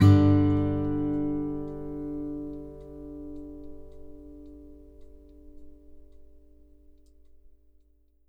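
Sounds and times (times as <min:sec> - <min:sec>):
country guitar ending: 0:00.0 - 0:05.6.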